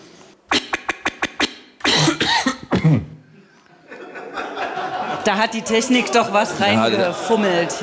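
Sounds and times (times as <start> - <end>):
full raspy throaty cough: 0.5 - 3.2
looped cough fragment: 0.5 - 3.7
laughter: 3.3 - 7.8
speech: 5.3 - 7.8.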